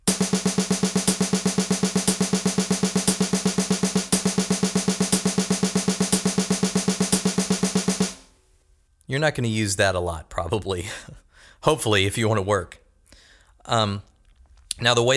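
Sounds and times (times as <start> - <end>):
thirty-second notes played as a fast stream of repeated pitched notes: 0.0 - 8.3
speech: 9.1 - 12.8, 13.7 - 14.1, 14.8 - 15.1.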